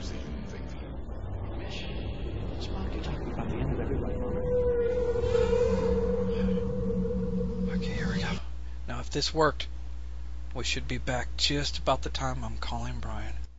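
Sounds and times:
whale song: 0.0s - 8.6s
dense rumbling wash of noise: 0.0s - 13.5s
speech: 9.1s - 9.7s, 10.6s - 13.4s.

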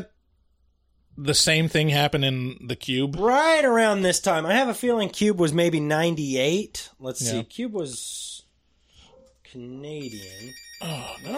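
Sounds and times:
speech: 1.2s - 8.4s, 9.5s - 11.3s
phone ringing with a high electronic tone: 10.0s - 11.3s.

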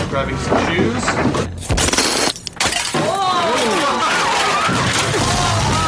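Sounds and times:
speech: 0.2s - 1.8s
glass shattering in a video game: 1.6s - 5.8s.

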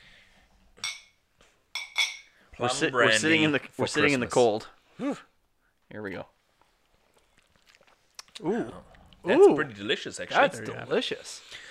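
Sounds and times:
glasses clinking in a toast: 0.8s - 2.4s
speech: 2.6s - 5.3s, 5.9s - 6.3s, 8.4s - 11.6s.

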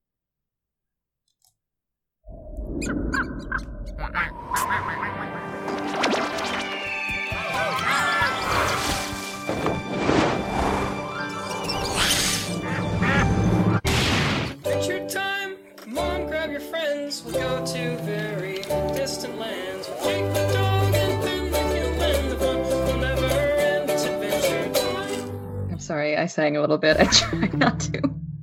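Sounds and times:
speech: 2.8s - 5.3s, 15.9s - 21.0s, 25.9s - 28.2s
squawky quack-like sound effects in the music: 3.2s - 6.4s, 12.0s - 13.8s
laughter: 4.0s - 5.6s, 26.9s - 28.1s
cartoon theme song: 4.0s - 25.8s.

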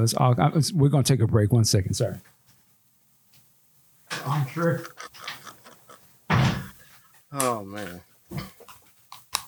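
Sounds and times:
speech: 0.0s - 2.4s, 4.3s - 5.2s, 7.3s - 8.5s
faint shuffling and rustling: 4.1s - 9.1s
door swinging shut with a loud thud: 6.3s - 6.7s.

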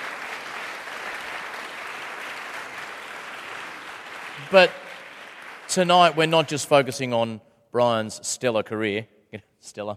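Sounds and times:
audience applauding for an astronomer: 0.0s - 6.4s
speech: 4.4s - 4.8s, 5.7s - 9.9s.

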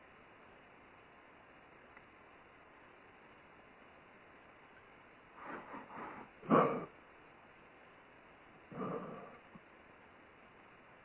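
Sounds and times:
dog barking in a house heard over a phone line: 5.5s - 6.9s, 8.7s - 9.4s.

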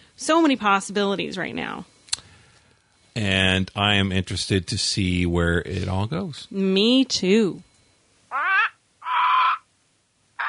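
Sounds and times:
speech: 0.2s - 1.9s, 3.2s - 7.7s
loud harsh raspy crow-like bird squawks as a segment sound effect: 8.3s - 9.7s.

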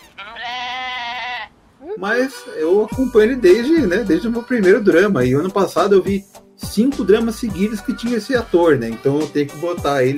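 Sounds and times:
male actor imitating a goat bleat: 0.0s - 4.4s
speech: 2.0s - 10.1s.

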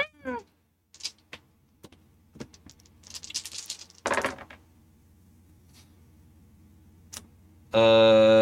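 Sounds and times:
Empath dice rattling and clattering across a hard surface: 1.0s - 1.3s, 2.4s - 4.6s.

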